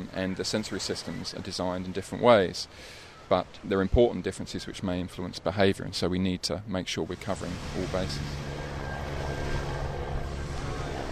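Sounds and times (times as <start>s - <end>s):
speech: 0.2s - 8.5s
helicopter engine and rotor flying overhead: 7.2s - 11.1s.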